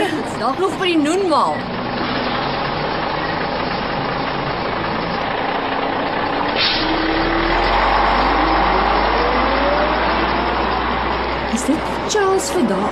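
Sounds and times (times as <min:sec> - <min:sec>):
large bus engine idling: 0:00.0 - 0:12.9
speech: 0:00.4 - 0:01.8, 0:11.6 - 0:12.9
bus air brakes hissing: 0:06.5 - 0:07.0.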